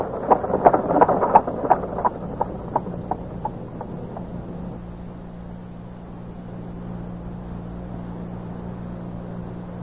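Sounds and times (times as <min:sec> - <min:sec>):
racehorse hooves galloping in a cup race: 0:00.0 - 0:04.8
windy outdoor rumble: 0:00.0 - 0:07.0.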